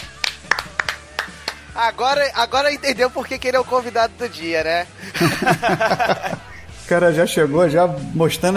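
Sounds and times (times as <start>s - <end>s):
scattered hand claps in a small round of applause: 0.0s - 1.7s
speech: 1.8s - 8.5s
laughter: 5.0s - 6.6s.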